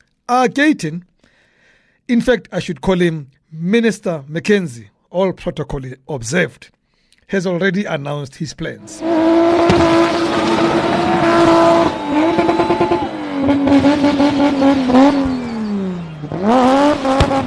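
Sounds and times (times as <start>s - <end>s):
speech: 0.3s - 1.1s, 2.1s - 12.6s, 13.7s - 15.2s, 16.4s - 17.4s
car engine revving as the car spins: 8.8s - 17.4s.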